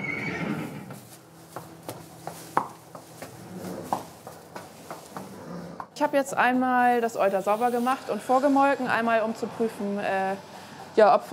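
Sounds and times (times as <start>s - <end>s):
Haflinger horse whinnying on a horse-breeding and horse-milk farm: 0.0s - 1.0s
Haflinger horse hoof clops on a hard surface: 0.8s - 6.0s
speech: 6.0s - 11.3s.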